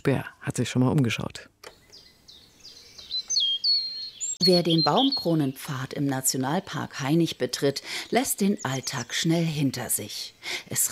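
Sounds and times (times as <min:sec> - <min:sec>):
speech: 0:00.0 - 0:01.6, 0:04.4 - 0:10.8
birds singing in the canopy of an old beech and linden forest: 0:01.7 - 0:06.0, 0:07.7 - 0:09.6.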